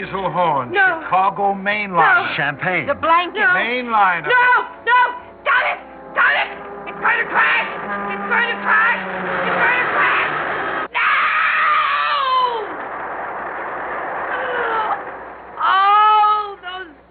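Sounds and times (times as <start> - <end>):
speech: 0.0 - 5.0, 7.0 - 9.8
several people screaming: 5.5 - 16.5.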